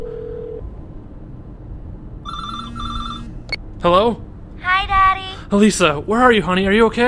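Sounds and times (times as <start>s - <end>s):
low rumble: 0.0s - 7.0s
telephone ringing: 2.3s - 3.4s
brief tone: 2.3s - 3.6s
speech: 3.8s - 4.2s, 5.5s - 7.0s.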